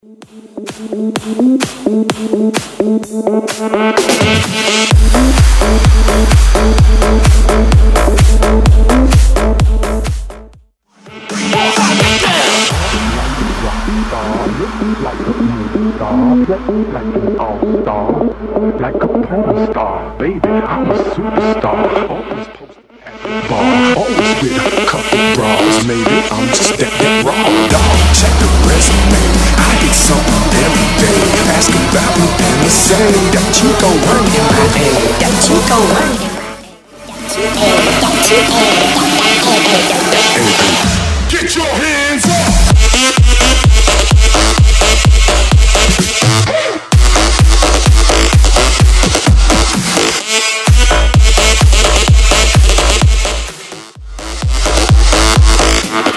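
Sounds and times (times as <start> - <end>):
bootleg bounce dance music: 0.0 - 56.1.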